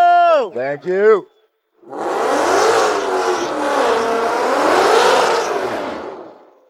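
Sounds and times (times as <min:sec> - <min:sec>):
speech: 0:00.5 - 0:02.2
drag race car with untuned 200-shot nitrous setup doing a burnout: 0:01.8 - 0:06.6.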